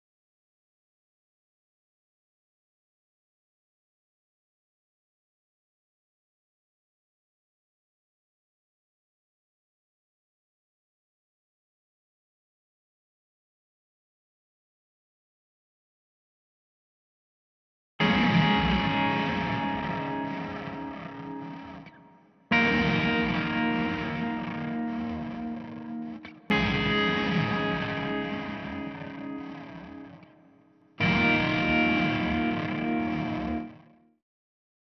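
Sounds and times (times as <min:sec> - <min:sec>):
guitar: 0:18.0 - 0:34.2.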